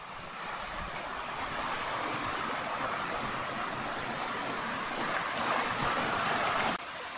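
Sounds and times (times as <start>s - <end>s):
brook water flowing beside a trail: 0.0s - 7.1s.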